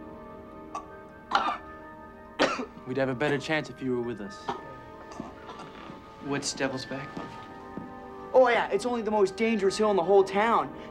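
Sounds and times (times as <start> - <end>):
man coughing: 0.8 - 1.7, 2.4 - 3.4, 4.5 - 5.6
speech: 2.6 - 4.7, 6.2 - 7.4, 8.4 - 10.8.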